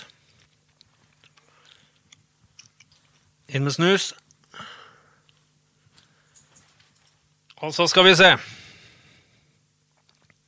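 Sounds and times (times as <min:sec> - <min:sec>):
low steady hum: 0:00.0 - 0:10.4
chewing gum: 0:00.1 - 0:03.2
speech: 0:03.5 - 0:04.7, 0:07.6 - 0:08.6.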